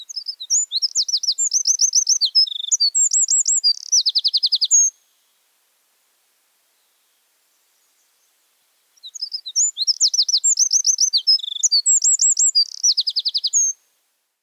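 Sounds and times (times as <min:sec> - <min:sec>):
Eurasian wren singing: 0:00.0 - 0:04.9, 0:09.0 - 0:13.8.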